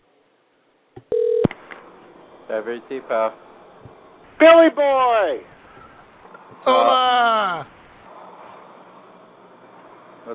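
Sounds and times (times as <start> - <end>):
faint steady hiss of line noise: 0.0 - 10.3
telephone dialing tones: 1.1 - 1.5
speech: 2.5 - 3.5, 4.4 - 5.5, 6.6 - 7.7.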